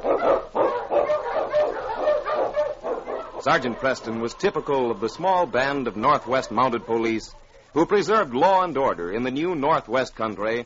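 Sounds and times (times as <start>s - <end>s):
husky sled dogs barking: 0.0s - 8.2s
speech: 3.4s - 10.6s.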